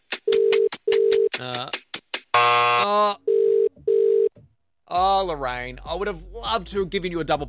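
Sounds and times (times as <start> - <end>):
speech: 1.4 - 1.8, 5.0 - 7.4
telephone ringback tone in double pulses: 2.4 - 4.3.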